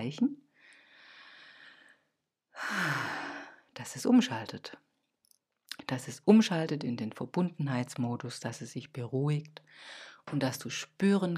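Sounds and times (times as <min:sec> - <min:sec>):
speech: 0:00.1 - 0:00.4, 0:02.6 - 0:03.0, 0:03.8 - 0:04.9, 0:05.8 - 0:11.3
deep breath: 0:00.6 - 0:03.7, 0:09.7 - 0:10.2.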